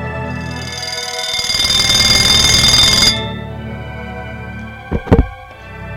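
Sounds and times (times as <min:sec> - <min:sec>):
alarm clock ringing: 0:00.2 - 0:03.5
soft thumps: 0:04.9 - 0:05.6.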